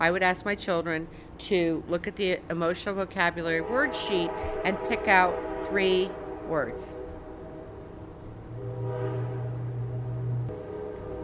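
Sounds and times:
speech: 0:00.0 - 0:07.0
train rumbling past: 0:03.2 - 0:11.2.

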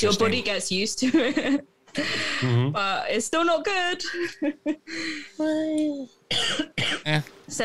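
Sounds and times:
speech: 0:00.0 - 0:07.6
person coughing in a short fit: 0:06.3 - 0:07.1.

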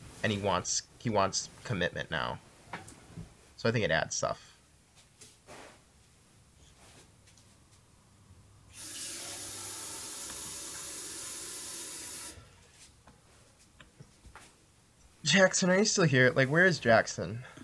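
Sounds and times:
speech: 0:00.2 - 0:02.5, 0:03.6 - 0:04.5, 0:15.3 - 0:17.5
tap water running into a glass: 0:08.8 - 0:12.4.

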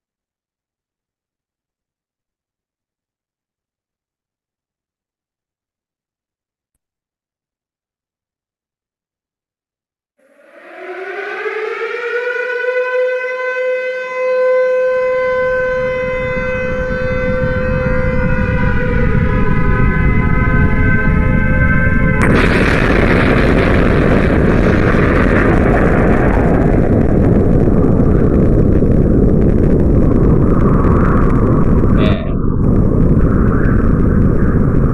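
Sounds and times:
air-raid siren wailing: 0:10.2 - 0:34.9
low rumble: 0:15.0 - 0:34.9
nuclear explosion sound effect: 0:15.0 - 0:34.9.

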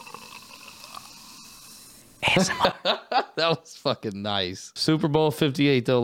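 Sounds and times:
tiny bubbles crackling and popping: 0:00.0 - 0:01.4
carbonated drink fizzing: 0:00.0 - 0:01.9
laughter: 0:02.2 - 0:03.6
speech: 0:02.3 - 0:06.0.

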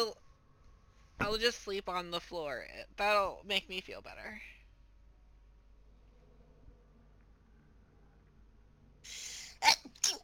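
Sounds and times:
speech: 0:01.3 - 0:04.6
person sneezing: 0:09.1 - 0:10.2.

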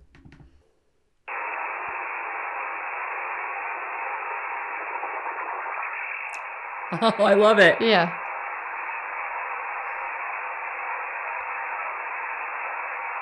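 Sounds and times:
welding machine interference buzzing on a radio receiver: 0:01.3 - 0:13.2
laughter: 0:06.9 - 0:07.8
speech: 0:06.9 - 0:08.2.

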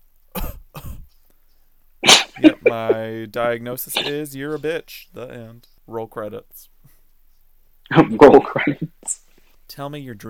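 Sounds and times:
person coughing: 0:00.4 - 0:01.1, 0:02.0 - 0:02.9, 0:04.0 - 0:04.2, 0:08.0 - 0:08.9
speech: 0:02.4 - 0:06.7, 0:07.9 - 0:10.2.

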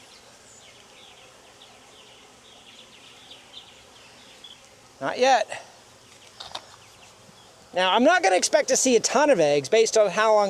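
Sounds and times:
brief higher honeybee chirps: 0:00.0 - 0:10.4
honeybees buzzing during hive inspection: 0:00.0 - 0:10.4
speech: 0:05.0 - 0:05.7, 0:07.7 - 0:10.4.

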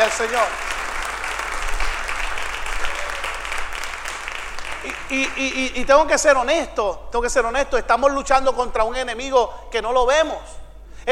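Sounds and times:
congregation applauding: 0:00.0 - 0:05.8
speech: 0:00.1 - 0:00.7, 0:04.8 - 0:10.6.

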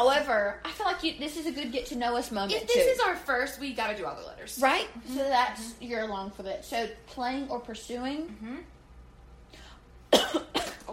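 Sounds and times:
speech: 0:00.0 - 0:08.8
person coughing after choking on a breath: 0:10.1 - 0:10.9.

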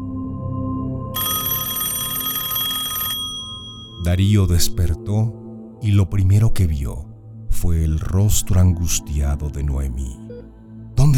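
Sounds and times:
telephone bell ringing: 0:01.2 - 0:04.1
speech: 0:04.0 - 0:10.2.

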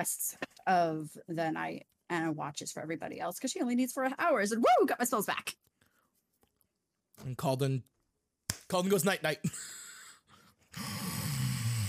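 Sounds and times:
speech: 0:00.0 - 0:05.6, 0:07.2 - 0:07.9, 0:08.7 - 0:09.7
person imitating a man snoring loudly: 0:10.8 - 0:11.8.

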